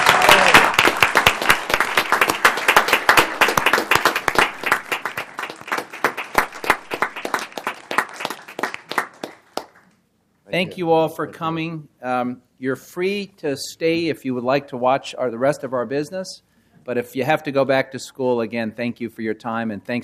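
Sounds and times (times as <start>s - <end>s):
room full of people applauding: 0.0s - 9.8s
speech: 10.5s - 20.0s.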